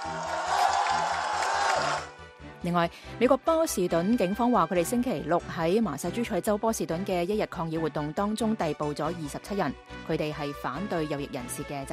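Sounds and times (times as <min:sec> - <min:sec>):
large crowd clapping loudly in tribute: 0:00.0 - 0:02.2
speech: 0:02.6 - 0:11.9.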